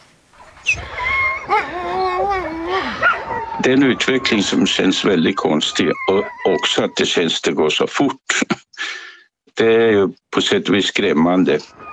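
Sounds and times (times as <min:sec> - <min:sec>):
Greenland sled dogs howling: 0:00.7 - 0:07.4, 0:11.6 - 0:11.9
speech: 0:03.6 - 0:08.6, 0:09.6 - 0:11.9.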